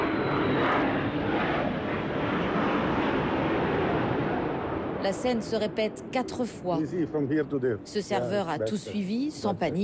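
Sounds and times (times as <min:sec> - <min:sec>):
faint high whine: 0:00.0 - 0:01.2
low-flying Shahed drone passing over Dubai near the airport: 0:00.0 - 0:06.4
low-flying fighter jet passing over Dubai near the airport: 0:00.0 - 0:07.9
speech: 0:05.0 - 0:09.8.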